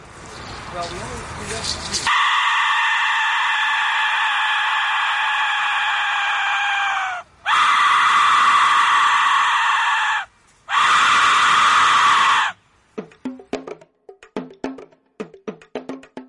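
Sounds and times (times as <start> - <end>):
Aztec death whistle shrieking: 2.1 - 12.6.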